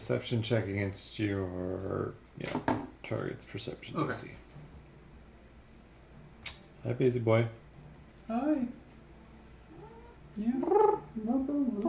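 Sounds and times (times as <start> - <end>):
speech: 0.1 - 4.4, 6.8 - 7.6, 8.3 - 8.8, 10.4 - 11.8
cat meowing: 9.7 - 10.2.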